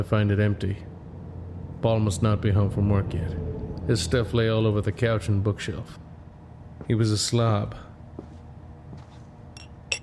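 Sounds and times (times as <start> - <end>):
speech: 0.0 - 0.9, 1.8 - 6.0, 6.8 - 7.8
low hum in a quiet kitchen: 0.0 - 10.0
sharp glassy clinks of a glass being handled: 9.6 - 10.0.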